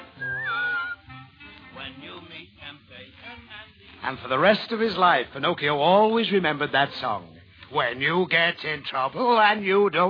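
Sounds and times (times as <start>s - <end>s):
person whistling a short clear tune: 0.0s - 1.2s
speech: 4.1s - 10.0s.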